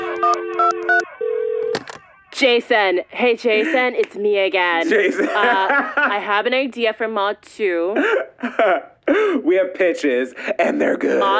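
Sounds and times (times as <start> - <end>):
phone keypad beeps: 0.0 - 2.0
phone dial tone: 0.0 - 2.2
speech: 2.4 - 11.3
laughter: 3.4 - 4.0, 4.8 - 6.3, 8.0 - 9.0.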